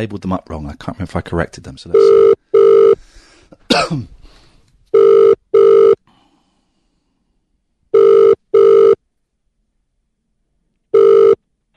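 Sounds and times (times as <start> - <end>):
speech: 0.0 - 2.4, 3.7 - 4.2
telephone ringback tone on an outgoing call: 2.0 - 3.0, 4.9 - 6.0, 7.9 - 9.0, 10.9 - 11.4
person clearing throat with a cough: 3.6 - 4.2.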